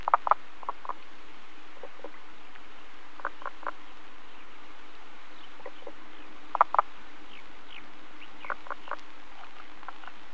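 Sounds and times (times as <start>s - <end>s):
common spadefoot knocking calls: 0.0s - 1.0s, 3.2s - 3.8s, 5.6s - 6.9s, 8.4s - 10.2s.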